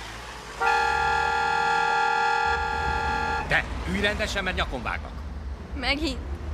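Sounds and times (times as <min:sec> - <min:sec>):
car horn honking: 0:00.6 - 0:03.6
speech: 0:03.5 - 0:06.3.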